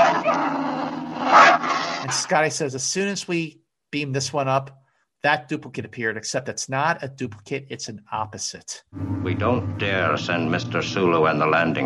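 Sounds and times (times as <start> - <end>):
dog snarling and barking aggressively: 0.0 - 2.2
speech: 2.0 - 11.8.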